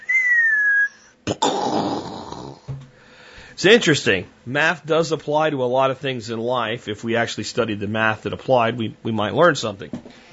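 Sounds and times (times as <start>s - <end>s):
person imitating an incoming artillery shell whistle: 0.0s - 2.6s
speech: 3.6s - 10.3s.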